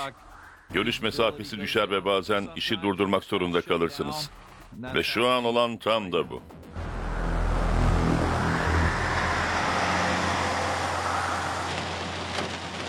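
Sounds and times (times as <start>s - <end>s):
speech: 0.0s - 6.9s
heavy rain pouring down: 6.8s - 12.8s.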